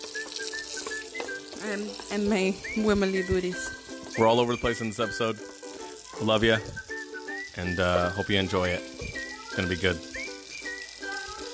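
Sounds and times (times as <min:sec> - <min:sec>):
dishes squeaking while being washed: 0:00.0 - 0:11.4
running water in a sink while washing dishes: 0:00.0 - 0:11.5
speech: 0:01.6 - 0:05.6, 0:06.2 - 0:06.8, 0:07.6 - 0:09.0, 0:09.6 - 0:10.1.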